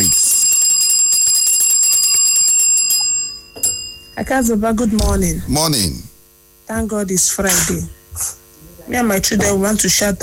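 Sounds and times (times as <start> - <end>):
bright loud bell ringing rapidly: 0.0 - 4.5
speech: 4.2 - 6.1, 6.7 - 8.3, 8.9 - 10.2.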